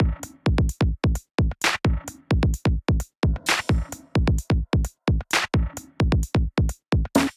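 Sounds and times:
drum kit: 0:00.0 - 0:07.3.

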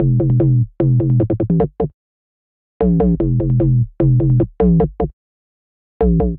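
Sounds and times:
bassline in G major: 0:00.0 - 0:01.9, 0:02.8 - 0:05.2, 0:06.0 - 0:06.3.

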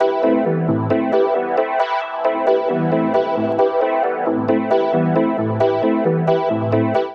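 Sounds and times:
synth pads in E major at 134 bpm: 0:00.0 - 0:07.1.

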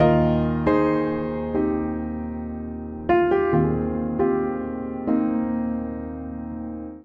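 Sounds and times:
upright piano phrase in E-flat major: 0:00.0 - 0:07.0.

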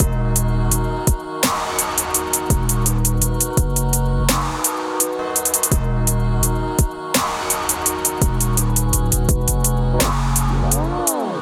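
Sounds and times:
deep groove music at 120 bpm from MIDI clips: 0:00.0 - 0:11.4.

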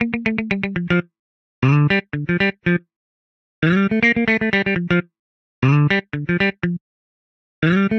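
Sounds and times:
African funk guitar playing in G minor: 0:00.0 - 0:02.8, 0:03.6 - 0:06.8, 0:07.6 - 0:07.9.

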